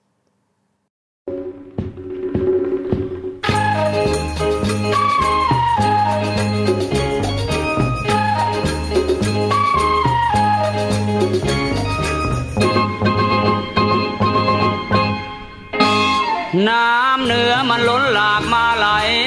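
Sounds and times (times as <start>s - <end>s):
soft instrumental lead-in: 1.3s - 16.6s
recorded Thai song: 1.3s - 19.2s
full band playing loudly: 2.7s - 16.6s.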